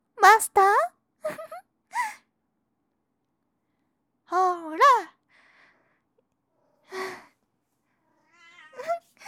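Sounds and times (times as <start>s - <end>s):
speech: 0.4s - 0.7s
cat meowing: 8.2s - 9.0s.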